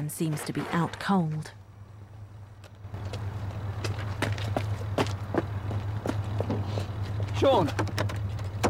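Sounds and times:
speech: 0.0s - 1.6s, 7.4s - 8.2s
footsteps of a man running on a hard outdoor surface into a car park: 2.9s - 7.5s.

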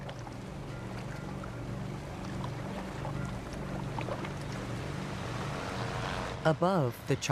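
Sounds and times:
continuous wash of water from boats on open water: 0.0s - 6.4s
patrol boat engine droning: 0.0s - 7.3s
speech: 6.4s - 7.3s.

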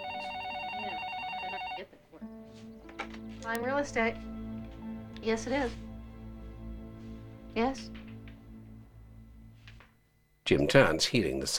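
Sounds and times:
office telephone ringing with a fast warbling electronic trill: 0.0s - 1.9s
speech: 3.4s - 4.3s, 5.2s - 5.8s, 7.6s - 8.0s, 10.5s - 11.5s.

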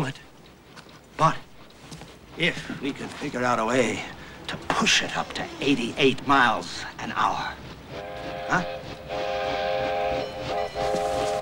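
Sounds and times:
steam train rumbling on the rails: 0.0s - 11.4s
speech: 1.2s - 1.4s, 2.4s - 7.6s, 8.5s - 8.8s
steam train whistle blasts: 7.9s - 11.4s.

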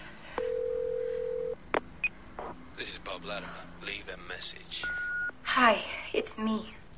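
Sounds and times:
phone dial tone: 0.4s - 1.6s
speech: 3.2s - 6.8s.

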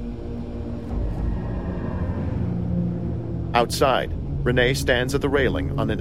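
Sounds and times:
car engine rumbling while pulling up: 0.2s - 6.0s
speech: 3.6s - 6.0s.

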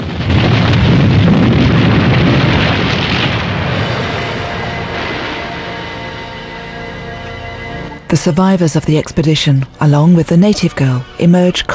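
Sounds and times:
roaring explosion of fire and smoke: 0.0s - 7.0s
rock cavern collapsing amid falling boulders: 0.0s - 7.4s
speech: 8.1s - 11.7s.

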